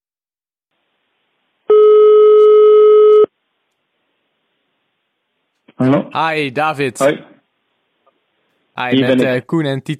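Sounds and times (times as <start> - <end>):
telephone ringing tone before call answered: 1.7 - 3.3
speech: 5.8 - 7.3, 8.8 - 9.9.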